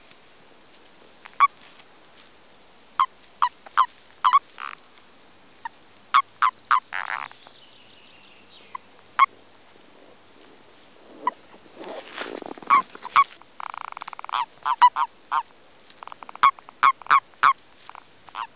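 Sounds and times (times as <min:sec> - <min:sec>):
common toad croaking mating calls during breeding: 0:01.3 - 0:01.6, 0:03.0 - 0:04.9, 0:05.6 - 0:07.5, 0:08.6 - 0:09.4, 0:11.2 - 0:11.5, 0:12.6 - 0:18.5.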